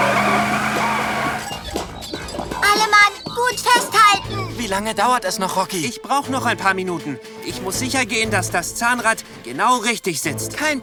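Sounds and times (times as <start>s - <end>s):
wagon shaking and rattling as someone dances in it: 0.0s - 4.9s
speech: 4.7s - 10.8s.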